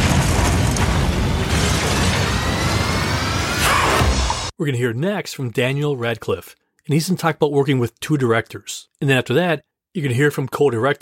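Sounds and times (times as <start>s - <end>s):
explosions from an action film scene: 0.0s - 4.5s
speech: 4.6s - 11.0s.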